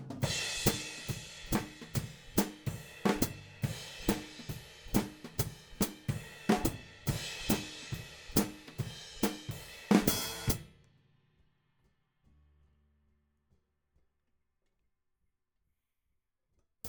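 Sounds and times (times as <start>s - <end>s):
hi-hat: 0.2s - 10.6s.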